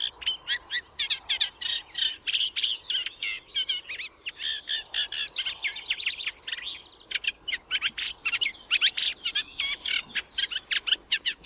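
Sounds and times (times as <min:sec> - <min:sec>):
Eurasian reed warbler singing: 0:00.0 - 0:11.4
faint background hiss: 0:00.0 - 0:11.4.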